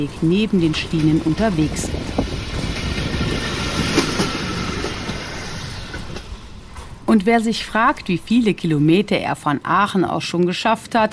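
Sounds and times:
speech: 0:00.0 - 0:02.1, 0:07.1 - 0:11.1
red pedal-powered rail draisine rolling along old railway tracks: 0:00.0 - 0:08.7.

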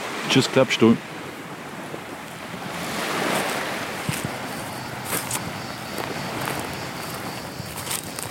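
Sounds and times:
constant wash of surf: 0:00.0 - 0:08.2
gusty wind blowing across the microphone: 0:00.0 - 0:08.2
speech: 0:00.3 - 0:01.1
soft crunching footsteps on beach sand: 0:02.2 - 0:08.2.

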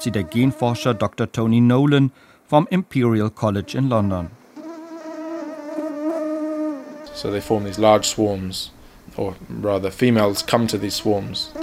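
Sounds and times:
thousands of mosquitoes buzzing in cages: 0:00.0 - 0:01.1, 0:04.5 - 0:08.3, 0:10.1 - 0:11.6
speech: 0:00.0 - 0:04.4, 0:07.2 - 0:11.6.

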